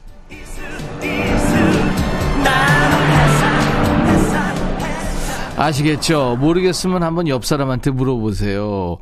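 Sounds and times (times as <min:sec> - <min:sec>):
car speeding past with engine and tire noise: 0:00.0 - 0:07.0
speech: 0:05.6 - 0:09.0.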